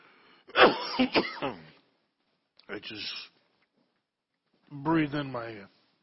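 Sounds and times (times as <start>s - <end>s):
person coughing after choking on drinking water: 0.5s - 1.8s
speech: 1.0s - 1.7s, 2.7s - 3.3s, 4.7s - 5.8s.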